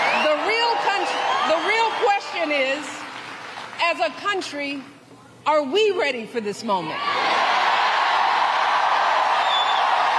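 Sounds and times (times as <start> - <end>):
large rowdy rally crowd roaring and cheering: 0.0 - 3.7, 7.0 - 10.1
speech: 3.9 - 7.3
high whistle or whoop: 9.3 - 10.1.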